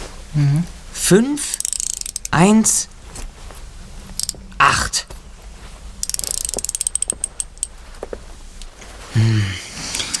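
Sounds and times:
speech: 0:00.4 - 0:01.7, 0:02.3 - 0:03.0, 0:04.9 - 0:05.1
door combination lock dial clicking: 0:01.6 - 0:02.4, 0:06.0 - 0:07.7.

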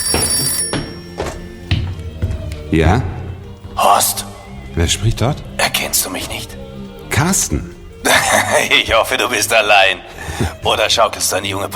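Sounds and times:
old-style telephone bell ringing: 0:00.0 - 0:02.0
speech: 0:02.7 - 0:03.1, 0:04.0 - 0:06.5, 0:07.2 - 0:11.7
laughter: 0:08.0 - 0:09.4.

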